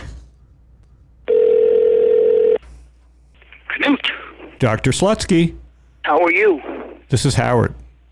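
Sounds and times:
person answering telephone: 0:01.3 - 0:02.6
telephone line ringing electronic tone: 0:01.3 - 0:02.6
speech: 0:04.6 - 0:07.8.

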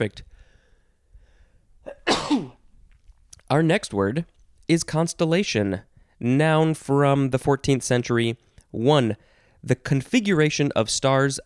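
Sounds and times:
speech: 0:00.0 - 0:00.3, 0:03.5 - 0:11.4
sneeze: 0:01.9 - 0:02.6.

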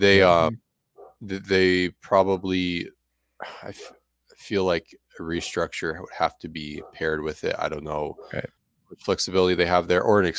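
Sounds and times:
speech: 0:00.0 - 0:00.6, 0:01.2 - 0:10.3
dogs barking: 0:01.0 - 0:01.2, 0:03.7 - 0:04.0, 0:05.3 - 0:05.7, 0:06.7 - 0:07.2, 0:08.1 - 0:08.5.

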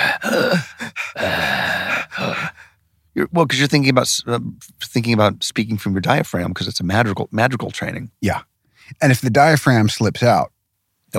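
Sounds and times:
loud heavy breathing with gasping and sighing: 0:00.0 - 0:02.8
speech: 0:03.4 - 0:10.5.

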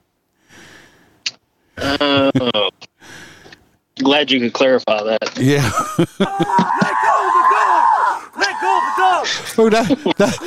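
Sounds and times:
laughter: 0:01.8 - 0:02.7, 0:05.4 - 0:07.6, 0:08.9 - 0:10.4
speech: 0:01.9 - 0:02.8, 0:04.1 - 0:07.0, 0:09.2 - 0:10.4
man screaming in pain as a police dog bites him: 0:05.5 - 0:09.5.

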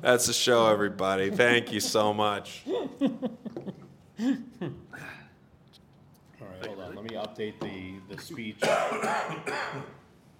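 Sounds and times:
speech: 0:00.0 - 0:03.4, 0:04.2 - 0:04.8, 0:07.0 - 0:10.0
laughter: 0:01.0 - 0:04.8
person clearing their throat: 0:08.6 - 0:10.0
person with a worsening cough coughing: 0:08.6 - 0:10.0.

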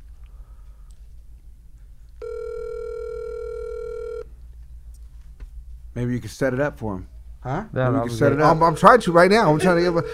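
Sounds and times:
phone call electronic ringback tone: 0:02.2 - 0:04.3
speech: 0:06.0 - 0:10.1.

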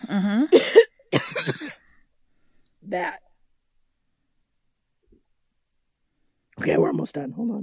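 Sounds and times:
speech: 0:00.1 - 0:01.2, 0:02.9 - 0:03.2, 0:06.6 - 0:07.6
harsh coughing: 0:00.5 - 0:01.9.

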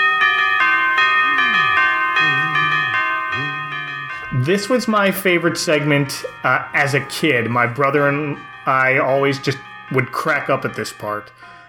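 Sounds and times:
animated church bells struck with mallets playing melody: 0:00.0 - 0:11.6
low swooping vocal-like tones: 0:01.3 - 0:04.5
speech: 0:04.5 - 0:11.6.

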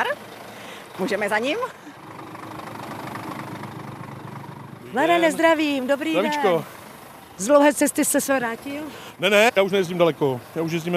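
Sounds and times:
truck engine idling: 0:00.0 - 0:10.9
speech: 0:01.0 - 0:01.9, 0:04.9 - 0:06.8, 0:07.4 - 0:10.9.

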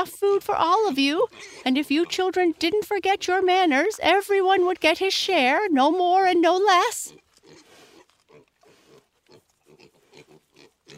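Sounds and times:
speech: 0:00.0 - 0:07.2
pig grunting and snorting: 0:00.6 - 0:02.8, 0:06.9 - 0:10.9.

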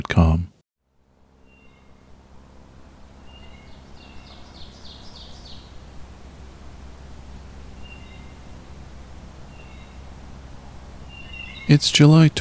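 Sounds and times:
speech: 0:00.0 - 0:00.5, 0:11.7 - 0:12.3
steady outdoor hiss: 0:00.0 - 0:12.3
short bird chirps: 0:01.4 - 0:02.0, 0:03.2 - 0:05.8, 0:07.7 - 0:08.4, 0:09.4 - 0:10.1, 0:11.0 - 0:11.9
breeding bird singing on a hot summer day near Cambridge, Ontario, Canada: 0:01.4 - 0:02.1, 0:03.1 - 0:06.0, 0:07.5 - 0:10.4, 0:11.0 - 0:12.3.

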